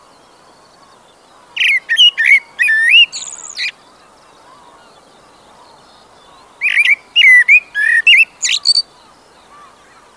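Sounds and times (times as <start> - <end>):
common blackbird singing whistled phrases: 1.5 - 3.8, 5.7 - 9.0.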